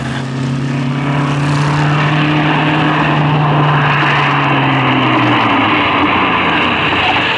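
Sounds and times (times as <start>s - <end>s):
heavy vehicle engine roaring as it slows to a stop: 0.0s - 7.3s.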